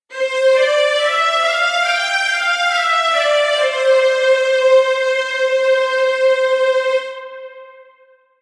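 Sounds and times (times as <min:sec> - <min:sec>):
strings playing legato: 0:00.1 - 0:07.6.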